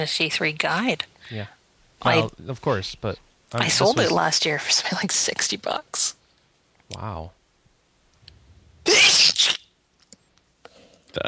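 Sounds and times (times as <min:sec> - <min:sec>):
speech: 0:00.0 - 0:06.2, 0:06.9 - 0:07.4
person sneezing: 0:08.9 - 0:09.6.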